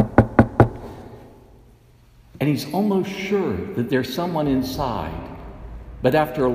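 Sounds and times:
pastor knocking on the door of a house: 0:00.0 - 0:00.9
speech: 0:02.4 - 0:05.3, 0:06.0 - 0:06.5.

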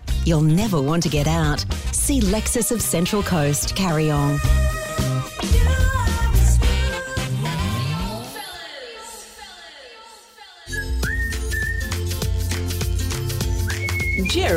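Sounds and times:
busy musical backing: 0:00.1 - 0:08.4, 0:10.7 - 0:14.5
speech: 0:00.2 - 0:05.8, 0:14.3 - 0:14.5
person whistling a tune: 0:10.7 - 0:12.2, 0:13.6 - 0:14.5.

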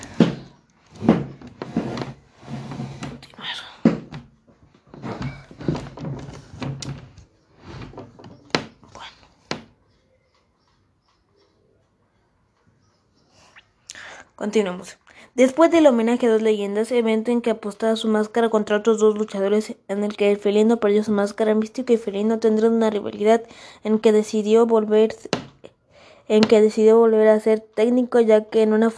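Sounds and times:
chair being shifted and adjusted: 0:00.0 - 0:03.3, 0:03.9 - 0:08.8
speech: 0:14.4 - 0:25.4, 0:26.3 - 0:28.9.

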